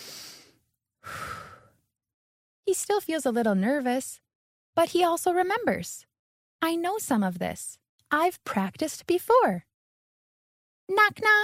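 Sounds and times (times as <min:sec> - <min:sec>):
deep breath: 0:00.0 - 0:01.8
speech: 0:02.7 - 0:04.2, 0:04.8 - 0:09.7, 0:10.9 - 0:11.4.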